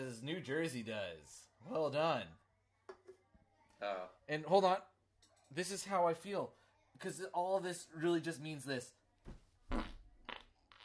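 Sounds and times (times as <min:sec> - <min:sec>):
speech: 0:00.0 - 0:02.4, 0:03.8 - 0:04.9, 0:05.5 - 0:09.8
loud sputtering fart: 0:09.7 - 0:10.8.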